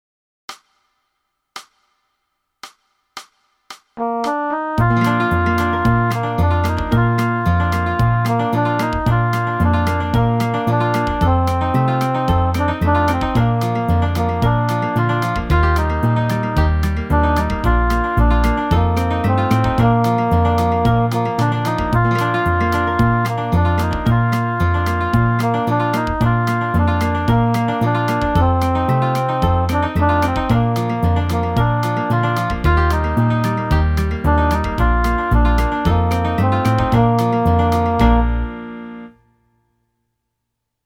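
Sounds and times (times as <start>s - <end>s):
saxophone playing: 4.0s - 39.2s.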